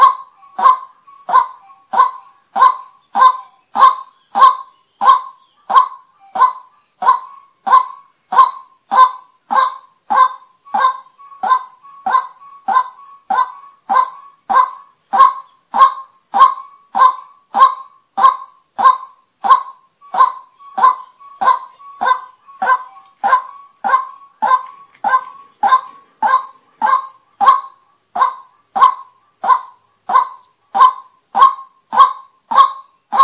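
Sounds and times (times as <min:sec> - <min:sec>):
white-breasted waterhen croaking: 0:00.0 - 0:33.2.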